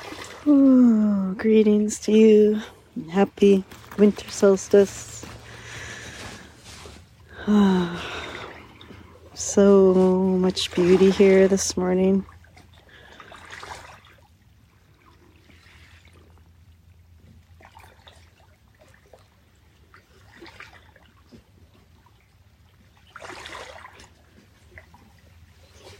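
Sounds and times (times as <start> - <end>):
steady low hum: 0.0 - 20.0
soft water lapping and trickling: 0.0 - 25.9
speech: 0.4 - 5.3, 7.4 - 8.3, 9.4 - 12.3.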